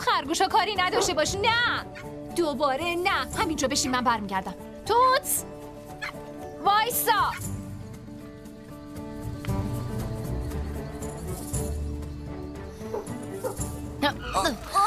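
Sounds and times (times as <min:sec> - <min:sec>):
steady music: 0:00.0 - 0:14.8
speech: 0:00.2 - 0:05.6, 0:06.6 - 0:07.6, 0:14.3 - 0:14.8
dog barking: 0:00.9 - 0:01.4, 0:12.9 - 0:13.7.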